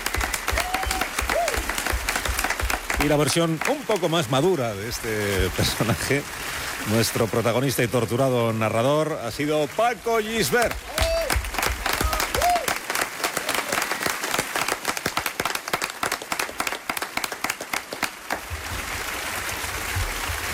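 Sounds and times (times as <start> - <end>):
crowd applauding: 0.0 - 5.5, 10.3 - 20.5
speech: 3.0 - 11.0.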